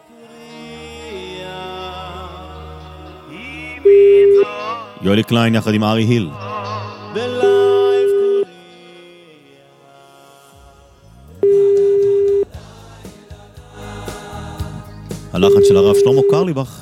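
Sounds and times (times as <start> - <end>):
music: 0.0 - 16.8
speech: 5.0 - 6.4, 15.4 - 16.8
ringback tone of an unanswered phone call: 11.4 - 12.5, 15.4 - 16.4.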